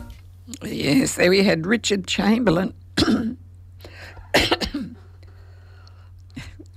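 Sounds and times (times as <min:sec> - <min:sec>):
speech: 0:00.9 - 0:03.4
person coughing forcefully: 0:03.0 - 0:03.4, 0:04.3 - 0:05.1.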